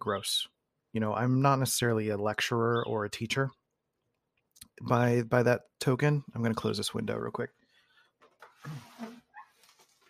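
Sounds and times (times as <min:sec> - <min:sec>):
speech: 0:00.0 - 0:03.6, 0:04.8 - 0:07.6, 0:08.6 - 0:09.2
birds chirping outside a window: 0:02.4 - 0:03.7.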